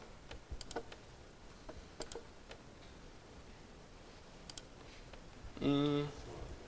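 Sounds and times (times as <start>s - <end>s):
keys clicked to advance presentation slides: 0.3s - 1.0s
brief voiced murmur: 5.5s - 6.3s.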